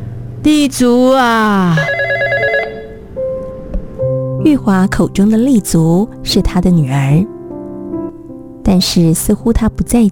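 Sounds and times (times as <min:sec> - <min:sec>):
speech: 0:00.4 - 0:02.0, 0:04.4 - 0:07.3, 0:08.7 - 0:10.1
home telephone ringing unanswered: 0:01.7 - 0:03.1.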